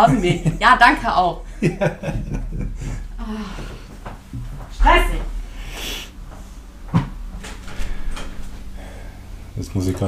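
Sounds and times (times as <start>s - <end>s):
laughter: 0.0s - 0.7s, 1.5s - 3.1s
speech: 0.0s - 3.7s, 4.8s - 5.3s, 9.6s - 10.0s
door being shut by a person: 6.9s - 8.5s.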